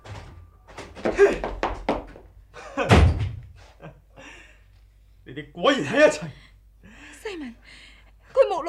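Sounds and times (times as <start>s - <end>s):
door slamming with heavy thuds: 0.0s - 1.3s, 2.8s - 3.5s
speech: 5.4s - 6.4s.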